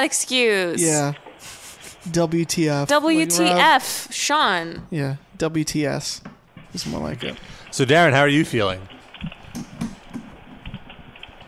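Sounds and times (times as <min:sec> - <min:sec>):
speech: 0:00.0 - 0:09.8
typing on a computer keyboard: 0:08.9 - 0:11.4.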